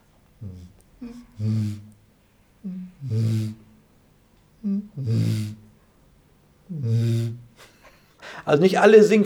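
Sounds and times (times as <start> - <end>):
man imitating a bittern's booming call: 0.4 - 1.9, 2.6 - 3.7, 4.6 - 5.6, 6.7 - 7.5
short breathy intake: 0.4 - 2.0, 2.6 - 3.7, 4.7 - 5.6, 6.7 - 7.4
speech: 8.5 - 9.2.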